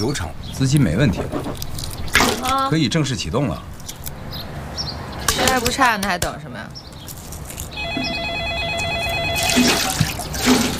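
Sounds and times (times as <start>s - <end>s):
speech: 0.0s - 1.8s, 2.5s - 3.7s, 5.4s - 6.8s, 9.6s - 10.7s
telephone ringing with a trilling electronic tone: 7.8s - 10.1s.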